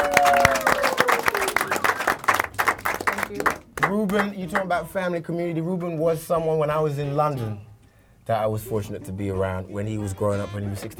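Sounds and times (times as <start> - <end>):
crowd applauding a musician: 0.0 - 3.9
speech: 4.0 - 7.7, 8.3 - 10.9.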